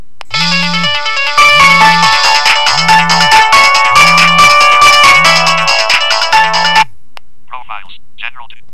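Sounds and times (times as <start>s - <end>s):
synthesized MIDI ringtone on a mobile phone: 0.3s - 6.9s.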